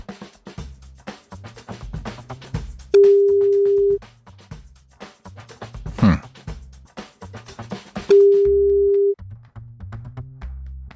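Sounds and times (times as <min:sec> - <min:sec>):
ringback tone of an outgoing call to a mobile phone: 0:03.0 - 0:04.0, 0:08.1 - 0:09.2.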